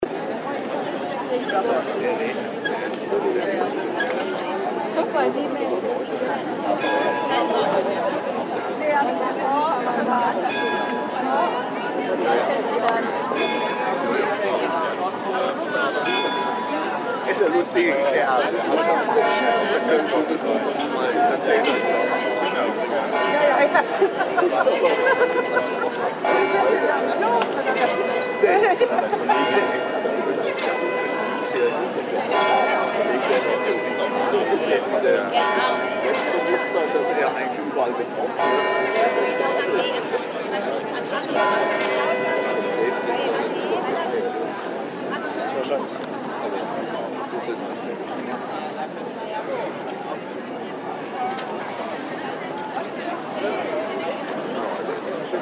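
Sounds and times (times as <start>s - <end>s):
audience chatting during an open-air theatre intermission: 0.0s - 55.4s
laughter: 23.4s - 26.2s, 28.4s - 29.8s.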